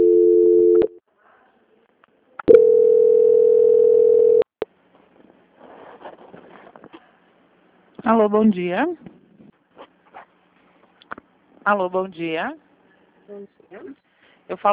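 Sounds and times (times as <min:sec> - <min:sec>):
telephone call transfer tone: 0:02.5 - 0:04.5
speech: 0:08.1 - 0:09.1, 0:11.6 - 0:12.6, 0:13.3 - 0:14.7.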